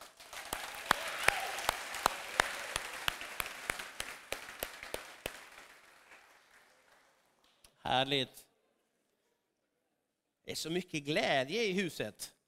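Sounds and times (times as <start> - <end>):
audience applauding for worship team: 0.0 - 7.4
speech: 7.9 - 8.5, 10.5 - 12.4.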